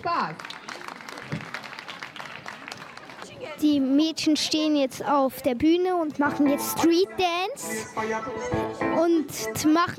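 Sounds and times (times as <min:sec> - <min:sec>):
speech: 0:00.0 - 0:00.6, 0:03.4 - 0:09.9
crowd applauding: 0:00.0 - 0:03.6.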